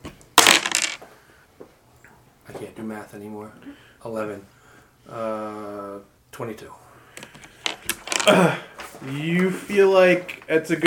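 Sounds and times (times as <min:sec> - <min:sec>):
dice tumbling and rattling across a surface: 0:00.4 - 0:01.0, 0:07.5 - 0:08.3, 0:10.3 - 0:10.8
speech: 0:02.6 - 0:06.8, 0:08.2 - 0:10.8.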